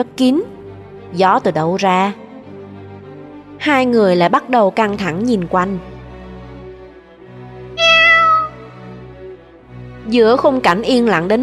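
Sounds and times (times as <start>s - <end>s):
speech: 0.0s - 0.5s, 1.1s - 2.2s, 3.6s - 5.9s, 10.1s - 11.4s
black cat meowing near a graveyard: 7.8s - 8.8s.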